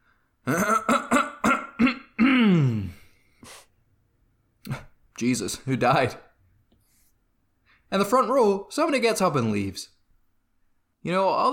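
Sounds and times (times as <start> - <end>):
speech: 0.4 - 0.7, 5.2 - 6.3, 7.9 - 10.0, 11.0 - 11.5
woman clearing her throat at a lectern: 0.5 - 3.0.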